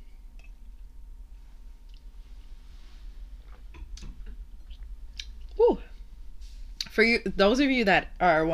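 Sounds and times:
low steady hum: 0.0s - 8.5s
person sipping Merlot red wine from a glass: 3.4s - 5.4s
speech: 7.0s - 8.5s.

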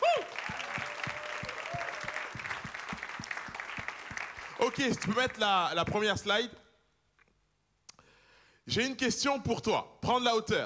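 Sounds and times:
audience applause welcoming newcomers: 0.0s - 5.3s
speech: 4.6s - 6.6s, 8.7s - 10.6s.

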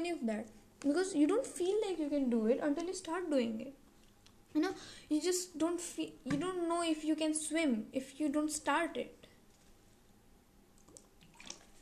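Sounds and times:
speech: 0.0s - 3.8s, 4.5s - 9.2s
person sipping and swallowing water: 10.8s - 11.7s.

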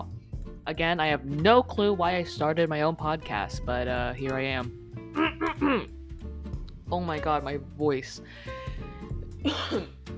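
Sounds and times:
speech: 0.7s - 6.0s, 6.9s - 8.6s, 9.4s - 10.0s
person clearing throat: 5.2s - 5.9s, 9.4s - 10.0s.

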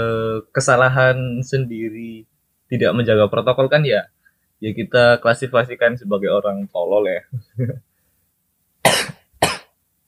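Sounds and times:
speech: 0.0s - 7.9s
person coughing harshly caused by ice: 8.8s - 9.7s.

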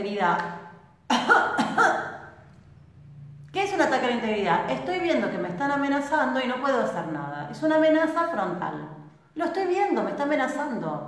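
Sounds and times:
speech: 0.0s - 0.7s, 3.6s - 11.0s
harsh coughs: 1.1s - 2.3s.

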